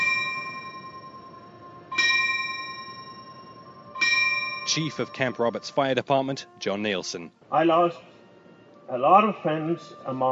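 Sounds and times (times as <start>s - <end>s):
fire bell tolling in remembrance: 0.0s - 5.7s
low hum: 0.0s - 10.3s
speech: 4.7s - 8.1s, 8.9s - 10.3s.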